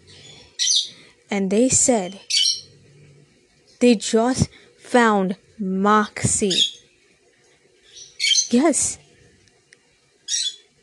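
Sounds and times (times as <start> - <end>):
pet bird chirping: 0.1 - 1.0, 2.0 - 2.7, 6.4 - 6.9, 7.9 - 8.7, 10.3 - 10.7
speech: 1.3 - 2.4, 3.8 - 6.7, 8.5 - 9.0.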